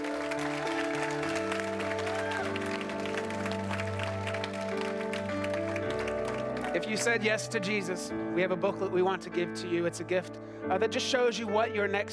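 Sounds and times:
audience clapping hands: 0.0 - 7.7
sustained keyboard or organ chords: 0.0 - 12.1
speech: 6.9 - 12.1.

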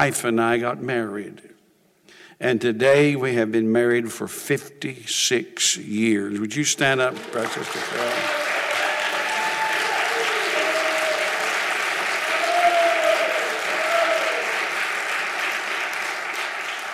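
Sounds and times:
speech: 0.0 - 1.5, 2.4 - 8.4
applause from a large audience: 7.0 - 16.9.

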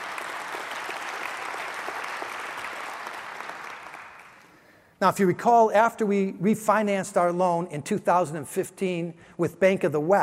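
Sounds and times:
audience applauding: 0.0 - 4.6
speech: 5.0 - 10.2.

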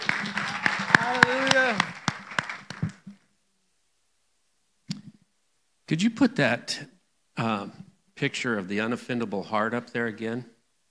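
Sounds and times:
audience applause: 0.0 - 3.1
raised voice or cheer: 0.4 - 2.0
speech: 5.9 - 10.5.

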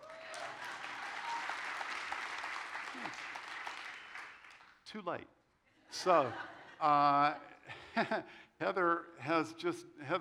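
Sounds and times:
audience applause at a service: 0.0 - 4.7
speech: 4.9 - 10.1.

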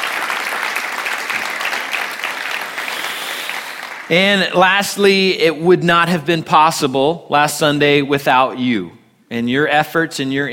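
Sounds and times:
crowd applause: 0.0 - 4.1
speech: 4.1 - 10.5.

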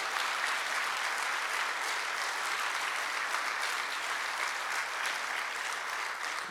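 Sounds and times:
large church crowd applauding: 0.0 - 6.4.

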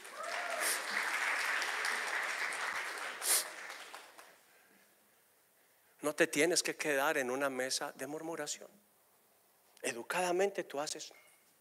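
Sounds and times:
audience applause: 0.0 - 4.4
speech: 6.0 - 8.8, 9.9 - 11.2.

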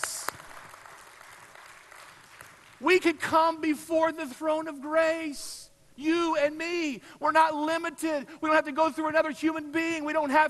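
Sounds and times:
audience clapping: 0.0 - 2.8
speech: 2.8 - 10.4.

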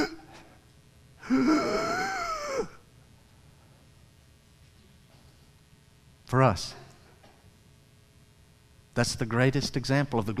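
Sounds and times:
voice imitating a man gasping for air: 1.2 - 2.8
speech: 1.3 - 1.7, 6.3 - 6.8, 9.0 - 10.3.

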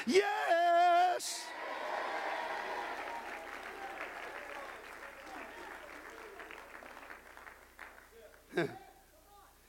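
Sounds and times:
speech: 0.0 - 0.4, 8.6 - 8.8
audience at a church worship service clapping and shouting: 1.4 - 8.5.

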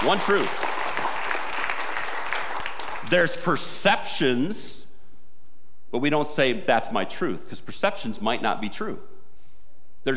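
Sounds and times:
speech: 0.0 - 0.6, 3.1 - 4.8, 5.9 - 9.1
congregation applauding: 0.0 - 3.1.

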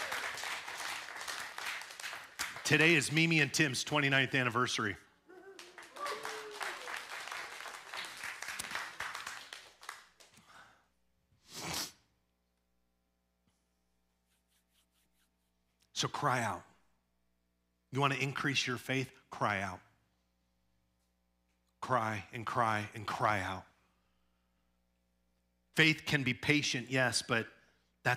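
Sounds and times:
voices cheering: 0.0 - 0.6, 5.3 - 8.1
crowd applauding: 0.0 - 3.3, 5.3 - 10.4
speech: 2.7 - 5.1, 16.0 - 16.7, 17.9 - 19.9, 21.8 - 23.7, 25.8 - 28.1.

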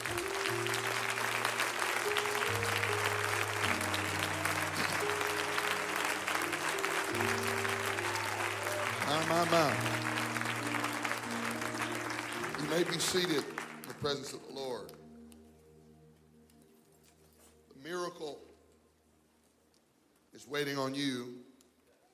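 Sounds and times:
large audience clapping: 0.0 - 15.0
organ or keyboard chords: 0.0 - 16.5
speech: 9.4 - 10.0, 12.8 - 15.0, 20.6 - 21.3.

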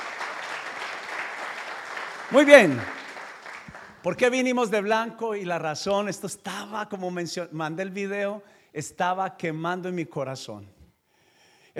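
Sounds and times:
audience applause from many hands: 0.0 - 4.1
speech: 2.3 - 3.0, 4.0 - 10.8.

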